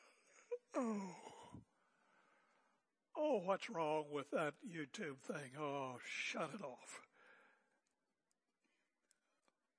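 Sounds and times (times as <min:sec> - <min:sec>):
person yawning: 0:00.5 - 0:01.6
speech: 0:00.8 - 0:01.3, 0:03.2 - 0:07.1.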